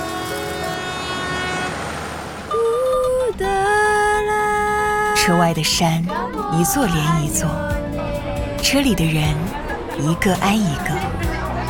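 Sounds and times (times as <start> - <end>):
passenger train horn blast: 0.0 - 2.8
slow passenger train rumbling along rails: 0.0 - 11.6
speech: 5.3 - 7.8, 8.6 - 11.3
laughter: 9.3 - 11.6.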